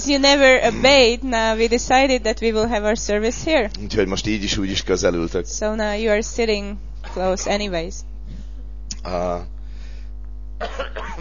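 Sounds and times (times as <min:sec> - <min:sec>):
speech: 0:00.0 - 0:08.1, 0:09.0 - 0:09.5, 0:10.6 - 0:11.1
steady low hum: 0:00.0 - 0:11.1
harsh raspy cough: 0:00.6 - 0:01.0, 0:07.0 - 0:07.7, 0:10.6 - 0:11.1.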